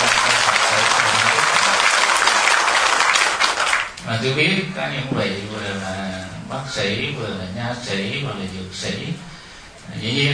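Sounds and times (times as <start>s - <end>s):
loud sustained applause from a large audience: 0.0s - 4.0s
speech: 4.1s - 9.3s, 9.9s - 10.3s.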